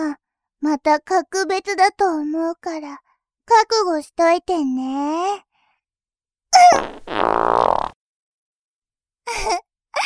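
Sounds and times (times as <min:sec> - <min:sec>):
speech: 0:00.6 - 0:05.5, 0:06.5 - 0:07.5, 0:09.3 - 0:09.6
fart: 0:06.6 - 0:08.0.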